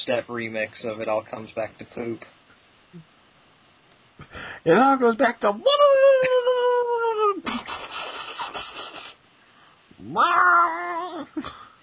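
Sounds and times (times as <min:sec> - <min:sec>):
speech: 0:00.0 - 0:03.1, 0:04.2 - 0:06.6, 0:10.0 - 0:11.7
cat yowling: 0:10.0 - 0:11.4.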